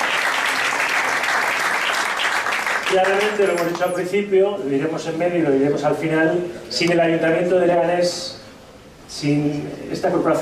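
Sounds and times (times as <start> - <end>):
audience applause at a local civic event in Leganés: 0.0 - 3.9
speech: 2.9 - 8.4, 9.1 - 10.4.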